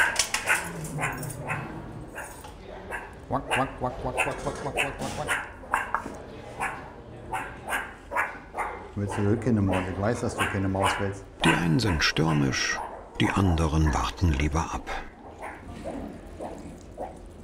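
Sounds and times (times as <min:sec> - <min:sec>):
hungry meerkats calling with yips and chirps: 0:00.0 - 0:13.1
speech: 0:03.3 - 0:05.5, 0:09.0 - 0:15.0.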